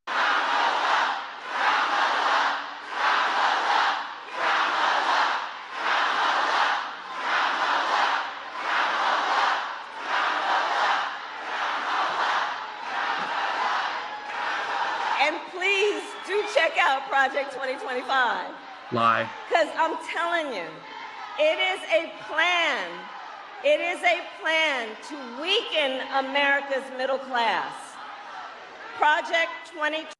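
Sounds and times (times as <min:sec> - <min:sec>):
large crowd chanting a short two-beat name: 0:00.0 - 0:26.7
speech: 0:17.0 - 0:27.8, 0:29.0 - 0:30.1.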